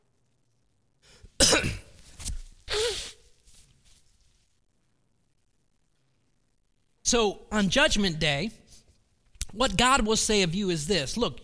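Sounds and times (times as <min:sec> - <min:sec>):
man clearing his throat: 0:01.4 - 0:01.9
man coughing: 0:01.4 - 0:01.9
speech: 0:07.1 - 0:08.6, 0:09.5 - 0:11.4.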